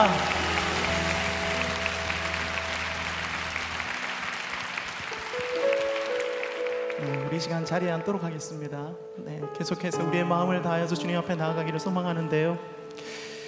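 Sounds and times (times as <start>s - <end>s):
large audience applauding: 0.0s - 8.1s
sustained keyboard chords: 0.0s - 13.4s
speech: 7.3s - 12.8s.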